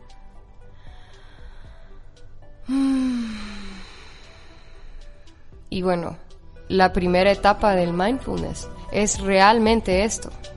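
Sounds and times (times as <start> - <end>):
deep audible breath out with a low voiced hum: 0.6 - 5.7
speech: 5.8 - 10.5.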